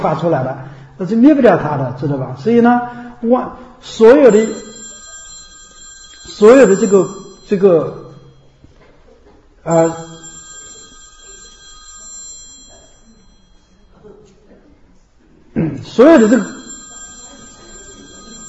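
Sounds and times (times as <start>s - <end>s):
speech: 0.0s - 4.8s, 6.4s - 8.0s, 9.6s - 10.2s, 15.6s - 16.6s
alarm clock ringing in bright electronic bursts: 4.0s - 8.8s, 9.7s - 14.0s, 16.0s - 18.4s.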